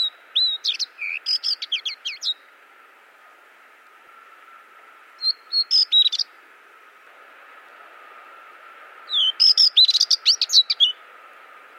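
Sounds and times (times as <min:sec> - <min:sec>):
white-eye chirp: 0:00.0 - 0:02.5, 0:05.2 - 0:06.4, 0:09.1 - 0:11.0.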